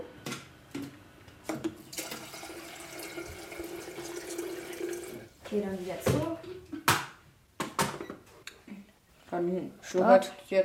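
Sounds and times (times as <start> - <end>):
tap water running into an electric kettle: 1.8 - 5.3
speech: 5.5 - 6.7, 9.4 - 10.6.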